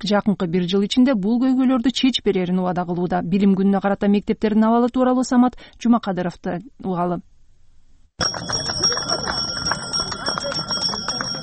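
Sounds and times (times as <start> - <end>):
speech: 0.0 - 7.3, 8.2 - 8.9
bustle of voices: 8.2 - 11.4
small school bell rung by a young boy: 8.2 - 11.4.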